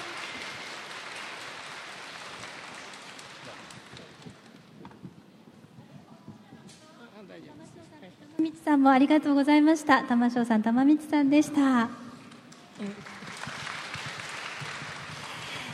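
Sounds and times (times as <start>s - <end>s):
large audience applause: 0.0s - 4.5s, 12.8s - 15.7s
speech: 8.4s - 12.0s, 12.8s - 13.2s.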